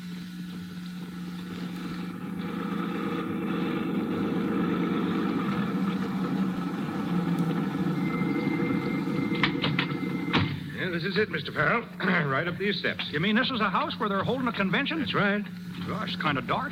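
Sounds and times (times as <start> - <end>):
car engine humming while driving: 0.0 - 10.7
speech: 11.0 - 16.6.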